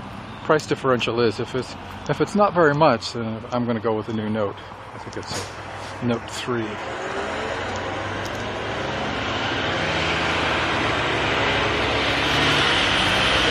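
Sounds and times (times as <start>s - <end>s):
fire truck heavy diesel engine roaring: 0.0s - 13.4s
speech: 0.5s - 7.2s.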